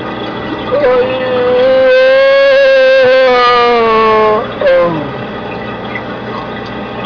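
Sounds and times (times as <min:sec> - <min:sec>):
sonarman stretching and groaning: 0:00.7 - 0:05.2.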